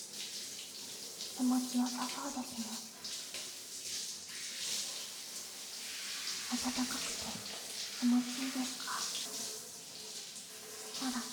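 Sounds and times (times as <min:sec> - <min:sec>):
running water rinsing soap foam off someone in a bath: 0:00.0 - 0:11.3
speech: 0:01.4 - 0:03.0, 0:06.6 - 0:07.4.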